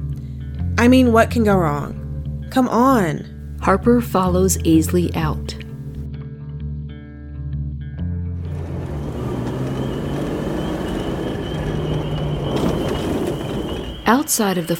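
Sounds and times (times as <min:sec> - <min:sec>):
speech: 0:00.8 - 0:05.6, 0:14.1 - 0:14.7
low humming tones: 0:08.4 - 0:14.3
cars rolling slowly past with engine rumble: 0:08.4 - 0:14.6
tire noise: 0:08.4 - 0:14.7.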